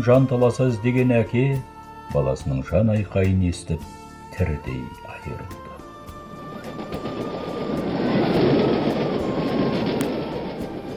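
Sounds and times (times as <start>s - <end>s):
speech: 0.0s - 5.6s
train travelling nonstop with a steady rumbling roar: 5.6s - 10.9s.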